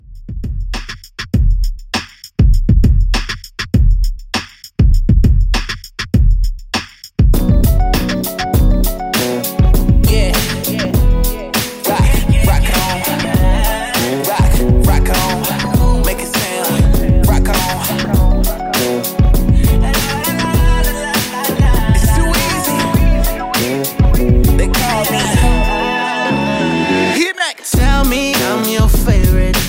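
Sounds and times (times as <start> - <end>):
drum machine beat: 0.0 - 26.3, 27.0 - 29.6.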